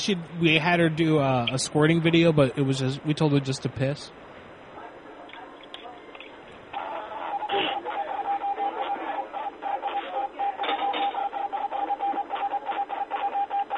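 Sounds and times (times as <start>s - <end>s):
speech: 0.0s - 4.3s
radio hiss: 6.8s - 13.7s
morse code beeping: 7.2s - 13.7s.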